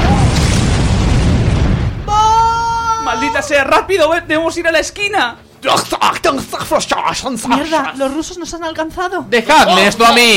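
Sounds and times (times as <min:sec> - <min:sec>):
petrol tank exploding from gunfire: 0:00.0 - 0:04.0
speech: 0:03.4 - 0:10.3.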